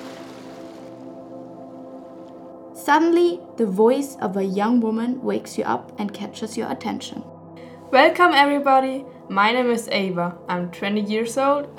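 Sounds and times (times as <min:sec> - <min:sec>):
ocean waves: 0:00.0 - 0:02.4
speech: 0:02.8 - 0:07.3, 0:07.9 - 0:11.7.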